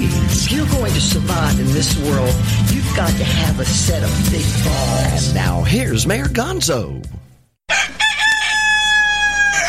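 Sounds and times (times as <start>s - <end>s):
speech: 0.6s - 7.2s
rooster crowing: 7.7s - 9.6s.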